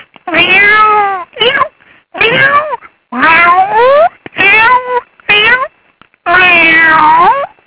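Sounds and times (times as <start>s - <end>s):
person imitating cat meowing: 0.3s - 5.7s, 6.3s - 7.6s.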